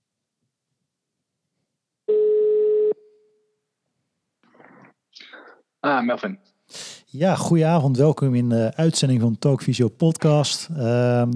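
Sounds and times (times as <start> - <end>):
telephone ringing tone on an outgoing call: 2.1 - 3.0
speech: 5.9 - 11.3.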